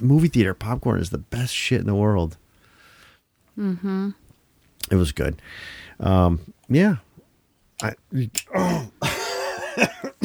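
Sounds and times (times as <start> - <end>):
speech: 0.0 - 2.4, 3.6 - 4.2, 4.9 - 7.0, 7.8 - 9.2
person coughing: 8.5 - 10.2
strained raspy throat clearing: 8.5 - 10.2.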